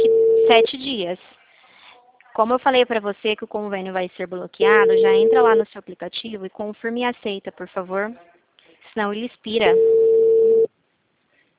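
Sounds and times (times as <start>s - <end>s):
telephone busy signal: 0.0s - 0.7s, 4.7s - 5.6s, 9.6s - 10.7s
speech: 0.5s - 1.4s, 2.4s - 8.3s, 9.0s - 10.0s.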